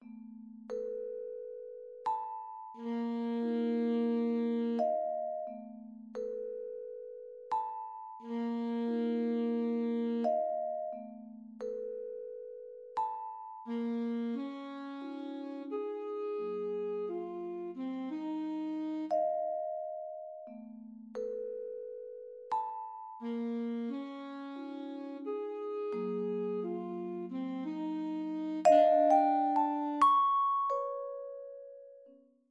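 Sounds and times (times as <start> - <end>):
vibraphone: 0.0 - 14.5, 19.0 - 24.0, 28.6 - 32.2
saxophone: 2.8 - 5.6, 8.2 - 11.1, 13.7 - 19.8, 23.2 - 30.1.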